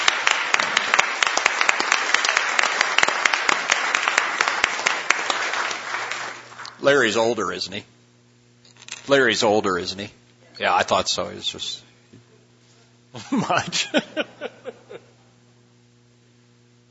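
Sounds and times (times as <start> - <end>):
applause in a Senate chamber welcoming a guest: 0.0 - 6.9
speech: 6.8 - 7.9, 9.1 - 11.9, 13.2 - 14.4
laughter: 13.2 - 15.4.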